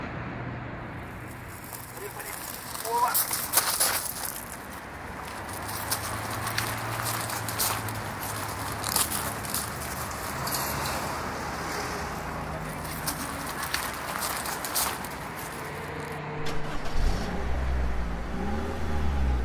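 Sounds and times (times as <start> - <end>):
steady broadband road noise: 0.0 - 19.4
car engine humming and revving: 4.7 - 19.4.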